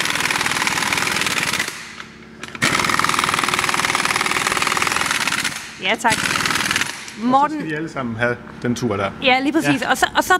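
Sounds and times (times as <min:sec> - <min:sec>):
power tool driving wheel bolts in a workshop: 0:00.0 - 0:07.3
speech: 0:05.8 - 0:10.3.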